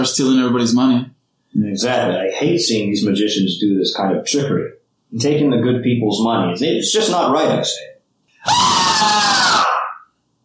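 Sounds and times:
speech: 0:00.0 - 0:09.7
high-pitched girly scream: 0:08.4 - 0:10.1.

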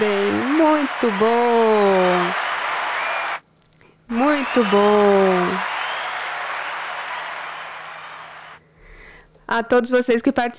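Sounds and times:
speech: 0:00.0 - 0:02.5, 0:04.1 - 0:05.8, 0:09.5 - 0:10.5
applause: 0:00.0 - 0:03.4, 0:04.1 - 0:08.6.

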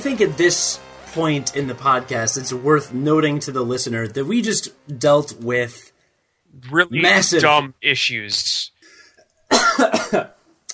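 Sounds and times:
speech: 0:00.0 - 0:05.9, 0:06.5 - 0:08.7, 0:09.5 - 0:10.4
breathy gasp: 0:08.8 - 0:09.2
harsh coughing: 0:09.5 - 0:10.4.

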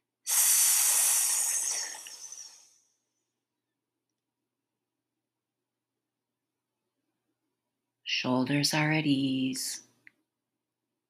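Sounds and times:
inhale through the nose in a breathing exercise: 0:00.3 - 0:02.8
long steady hissing breath exhaled through the teeth in a breathing exercise: 0:00.3 - 0:02.8
speech: 0:08.1 - 0:09.9.

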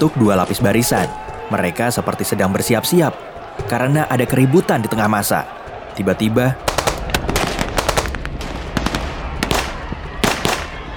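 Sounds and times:
speech: 0:00.0 - 0:06.8
gunfire in rapid bursts: 0:06.6 - 0:10.9.

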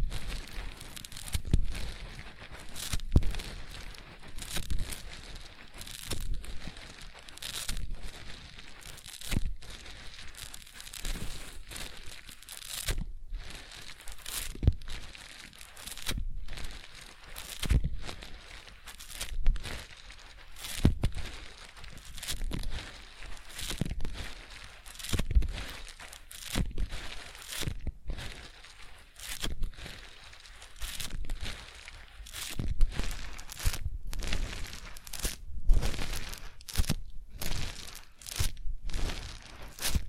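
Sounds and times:
sponge squeezed wet crunching: 0:00.0 - 0:40.0.

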